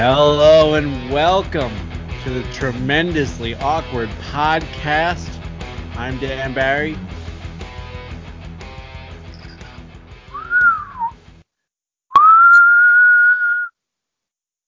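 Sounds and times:
speech: 0.0s - 5.3s, 6.0s - 7.1s
music: 0.0s - 11.2s
person whistling a tune from a movie: 10.3s - 11.2s, 12.1s - 13.7s.

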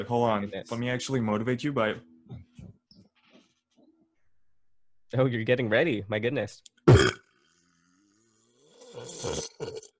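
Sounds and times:
speech: 0.0s - 2.4s, 5.1s - 7.1s, 9.0s - 9.9s
long burp: 6.8s - 9.9s.

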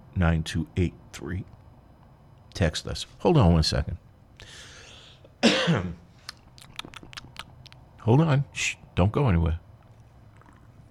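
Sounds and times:
speech: 0.2s - 1.6s, 2.6s - 4.7s, 5.6s - 6.0s, 8.0s - 9.6s
loud cough: 5.4s - 6.0s.

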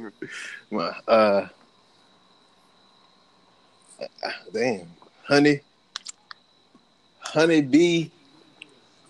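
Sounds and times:
speech: 0.0s - 1.6s, 4.0s - 5.7s, 7.3s - 8.2s
wet mouth smacks and clicks: 5.9s - 6.4s.

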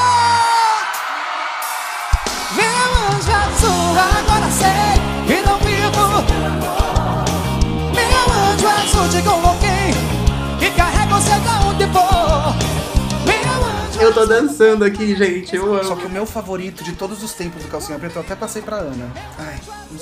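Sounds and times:
pop ballad with singing, drums and sustained chords: 0.0s - 17.2s
speech: 14.1s - 20.0s.

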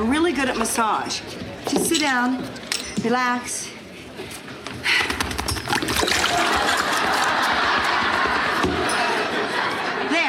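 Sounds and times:
speech: 0.3s - 4.5s
water sloshing and splashing in a bath: 5.7s - 7.3s
laughter: 6.1s - 10.2s.

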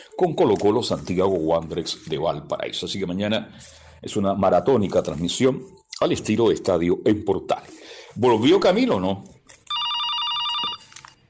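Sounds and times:
speech: 0.2s - 9.4s
telephone ringing with electronic trilling: 9.7s - 11.2s.

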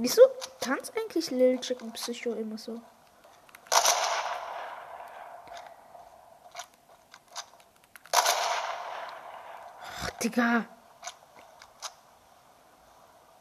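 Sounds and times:
speech: 0.0s - 3.0s, 10.2s - 10.8s
video game gunshots: 3.6s - 6.2s, 8.1s - 9.9s.

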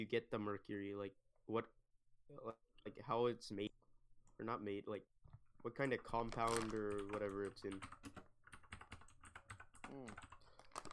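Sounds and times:
speech: 0.0s - 3.8s, 4.4s - 8.2s
slow typing on a computer keyboard: 6.4s - 10.9s.

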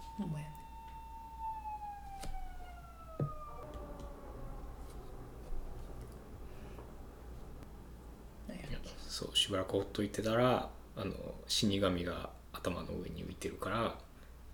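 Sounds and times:
virtual pet toy electronic siren wail sliding downward in pitch: 0.0s - 7.7s
noise: 0.0s - 14.5s
speech: 0.2s - 0.6s, 9.2s - 14.0s.

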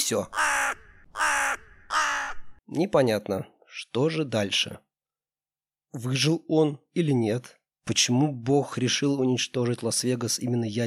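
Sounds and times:
speech: 0.1s - 0.4s, 2.7s - 4.9s, 5.9s - 10.8s
crow cawing: 0.3s - 2.6s.

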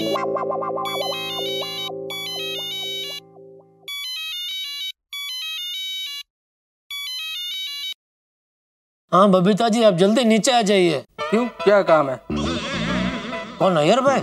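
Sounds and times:
mobile phone ringtone electronic melody: 0.0s - 6.3s, 6.9s - 8.0s
speech: 0.2s - 1.7s, 9.1s - 12.4s, 13.6s - 14.2s.

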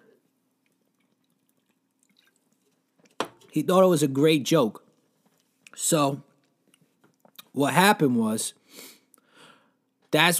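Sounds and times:
person sipping a drink: 0.0s - 3.2s
speech: 3.6s - 4.8s, 5.8s - 6.3s, 7.6s - 8.9s, 10.1s - 10.3s.

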